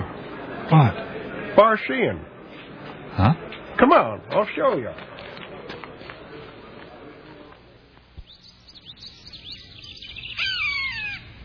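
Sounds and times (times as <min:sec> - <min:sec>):
faint outdoor noise: 0:00.0 - 0:11.4
speech: 0:00.7 - 0:02.3, 0:03.2 - 0:05.1
hawk calling while circling overhead: 0:08.9 - 0:11.4.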